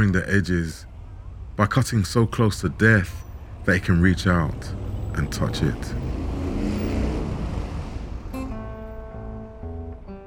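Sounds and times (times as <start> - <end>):
speech: 0.0 - 0.9, 1.6 - 6.1
Indian 500 motorcycle engine roaring at speed on city streets: 4.6 - 8.3.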